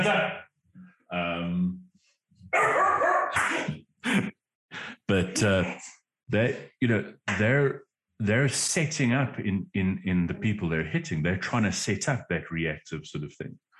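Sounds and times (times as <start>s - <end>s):
speech: 1.1s - 1.8s, 2.5s - 4.3s, 5.1s - 13.7s
dog barking: 2.6s - 3.4s.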